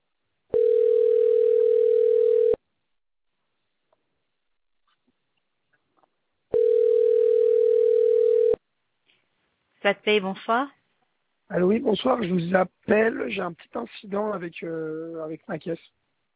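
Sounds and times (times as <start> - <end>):
phone ringback tone during an outgoing call: 0.5 - 2.6, 6.5 - 8.6
speech: 9.8 - 10.8, 11.5 - 16.0.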